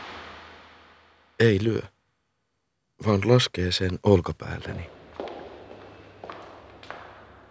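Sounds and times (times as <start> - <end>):
speech: 1.4 - 2.0, 3.0 - 5.0
footsteps walking up stairs: 4.6 - 7.4.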